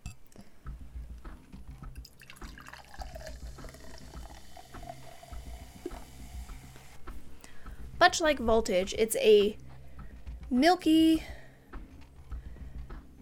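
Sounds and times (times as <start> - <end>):
soda pouring into a glass: 2.1 - 6.9
fizzy crackle of soda: 2.1 - 7.0
speech: 8.1 - 9.6, 10.5 - 11.4.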